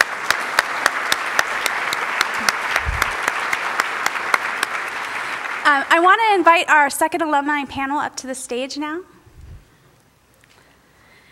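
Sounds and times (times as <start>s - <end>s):
sharp claps at a regular beat: 0.0s - 5.6s
crowd applauding: 0.0s - 6.4s
speech: 5.8s - 9.1s.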